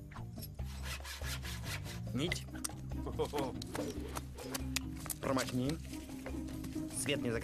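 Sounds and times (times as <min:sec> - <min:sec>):
hand saw sawing through wood: 0:00.6 - 0:02.2
speech: 0:02.1 - 0:07.4.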